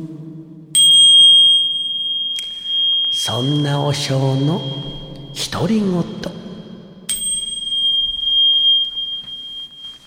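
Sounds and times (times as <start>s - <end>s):
temple bell struck gently: 0.8s - 10.0s
speech: 3.2s - 6.4s.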